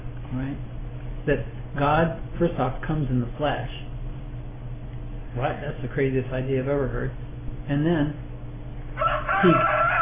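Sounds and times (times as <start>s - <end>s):
speech: 0.3s - 3.8s, 5.3s - 8.3s, 9.4s - 9.8s
rooster crowing: 8.9s - 9.9s.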